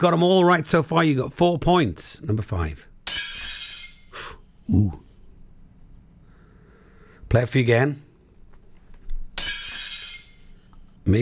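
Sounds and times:
speech: 0.0 - 2.9, 4.2 - 5.0, 7.3 - 8.1
plate smashing: 3.0 - 4.2, 9.4 - 10.7
ringing scatter of plate shards: 3.0 - 4.3, 9.4 - 10.8.

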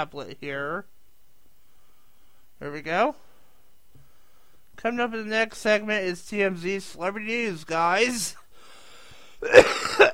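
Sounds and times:
speech: 0.0 - 1.0, 2.6 - 3.2, 4.8 - 8.4, 9.4 - 10.1
person clearing throat: 9.4 - 10.1
person coughing: 9.4 - 10.1.

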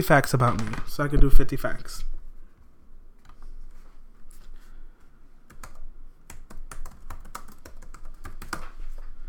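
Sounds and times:
speech: 0.0 - 2.1
typing on a computer keyboard: 5.5 - 8.8.

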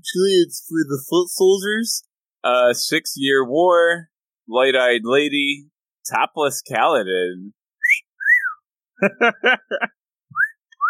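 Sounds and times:
speech: 0.0 - 7.6, 9.0 - 10.0
person whistling into a microphone: 7.8 - 8.6, 10.3 - 10.8
laughter: 9.0 - 10.0.

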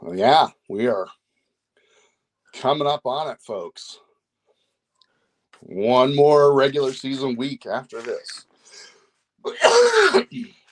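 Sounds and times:
speech: 0.1 - 1.2, 2.6 - 4.0, 5.6 - 10.6
person coughing: 9.5 - 10.5.

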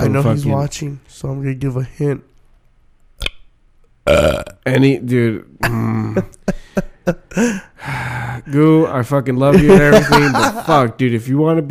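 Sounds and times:
speech: 0.1 - 2.3, 4.0 - 11.6
person burping into the microphone: 4.0 - 4.7
laughter: 9.5 - 10.9.

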